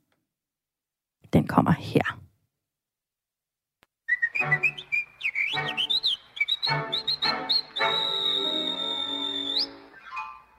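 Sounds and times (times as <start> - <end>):
speech: 1.3 - 2.2
whistled melody from an animated film song: 4.1 - 10.5
light musical accompaniment: 4.4 - 10.5.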